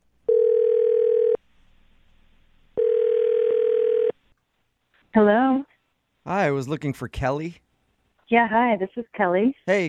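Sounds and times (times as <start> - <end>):
long steady telephone ringback tones: 0.3 - 1.4, 2.8 - 4.2
speech: 6.5 - 7.6, 8.3 - 9.8.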